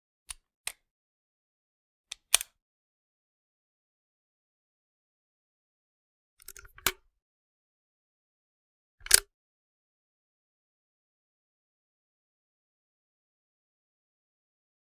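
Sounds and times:
.357 pistol chamber opening and closing: 2.1s - 2.5s, 6.4s - 7.0s, 9.0s - 9.2s.

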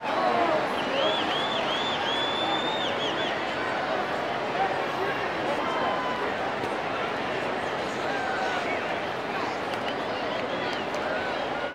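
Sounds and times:
baseball crowd ambience: 0.0s - 11.7s
whistle: 0.9s - 3.3s.

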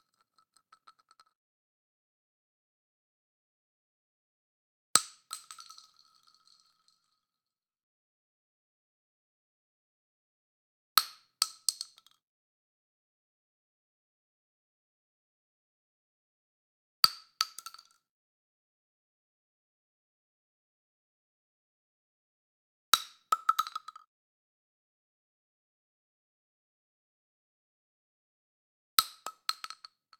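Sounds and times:
12 gauge shotgun shell dropping on concrete: 5.0s - 6.9s, 22.9s - 24.1s, 29.0s - 30.1s.

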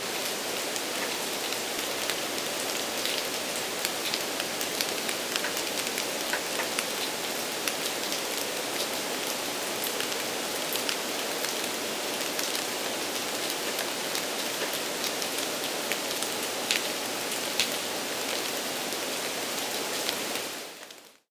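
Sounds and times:
rain: 0.0s - 21.2s.

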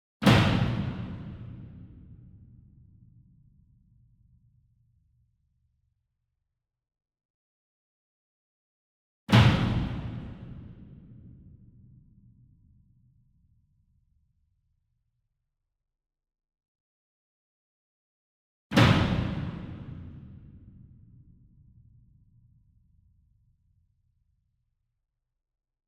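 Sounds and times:
single 66 inch drum flam with hard beater far: 0.2s - 2.3s, 9.3s - 11.6s, 18.7s - 20.9s.

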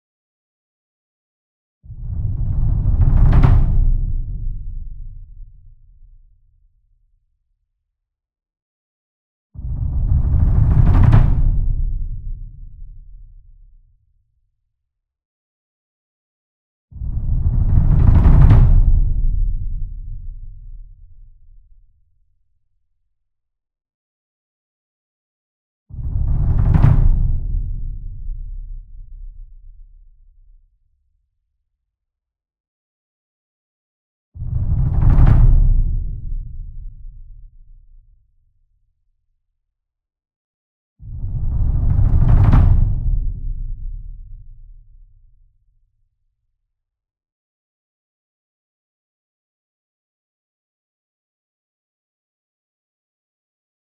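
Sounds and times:
66 inch drum roll with soft beater: 2.0s - 5.4s, 9.6s - 12.6s, 17.0s - 20.1s, 26.0s - 28.4s, 34.5s - 37.4s, 41.2s - 44.7s.

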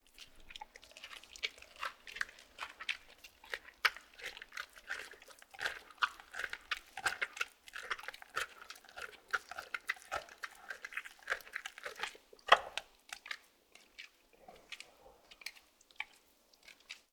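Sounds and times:
two tigers chewing: 0.0s - 17.1s.

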